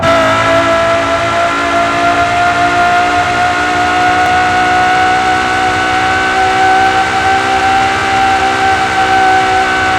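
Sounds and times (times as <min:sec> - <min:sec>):
Ferrari LaFerrari car: 0:00.0 - 0:09.9.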